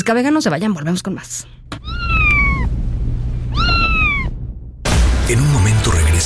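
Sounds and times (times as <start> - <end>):
speech: 0.0 - 1.6, 5.3 - 6.2
steady low rumble: 0.0 - 5.2
cat meowing: 1.7 - 2.7, 3.5 - 4.4.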